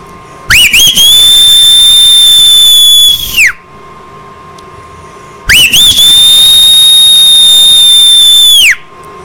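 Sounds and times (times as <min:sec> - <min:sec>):
loud piercing human whistle: 0:00.5 - 0:03.6, 0:05.5 - 0:08.9.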